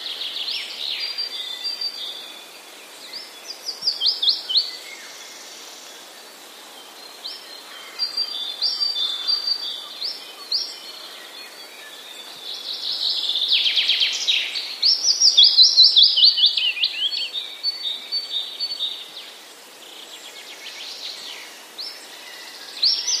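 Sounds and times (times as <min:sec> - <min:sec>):
willow warbler singing: 0:00.0 - 0:23.1.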